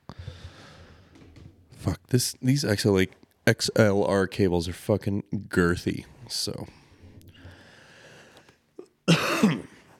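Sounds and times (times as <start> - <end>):
speech: 1.8 - 6.8
single harsh cough away from the microphone: 9.0 - 9.9.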